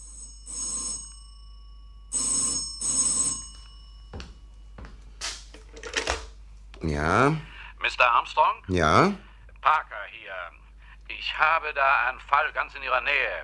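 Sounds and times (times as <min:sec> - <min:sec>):
telephone bell ringing with an incoming call: 0:00.0 - 0:04.9
speech: 0:06.8 - 0:10.6, 0:11.2 - 0:13.4.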